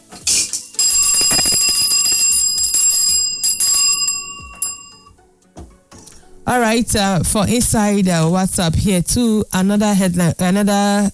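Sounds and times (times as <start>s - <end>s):
bright metallic bell of blessing ringing: 0.7s - 5.1s
speech: 6.6s - 11.1s.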